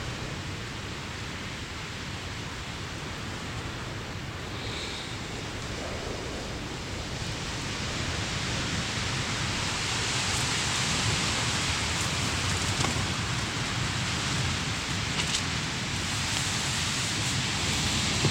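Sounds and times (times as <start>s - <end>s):
steady loud wind roaring: 0.0s - 18.2s.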